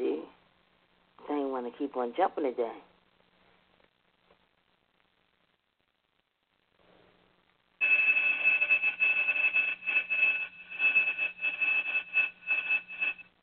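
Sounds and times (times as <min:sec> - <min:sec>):
speech: 0:01.7 - 0:02.9
loud electric school bell ringing: 0:07.8 - 0:13.2.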